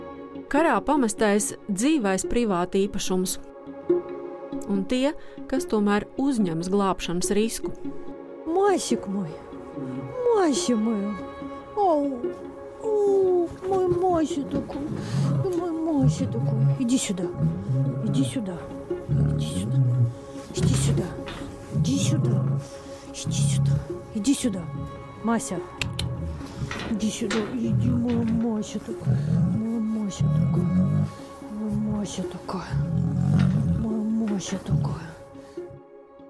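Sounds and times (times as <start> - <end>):
speech: 0.4 - 3.5, 4.7 - 8.0, 8.6 - 26.0, 26.9 - 33.6, 34.4 - 35.2
lion roaring in deep rhythmic grunting bursts: 13.5 - 25.2, 25.9 - 35.2.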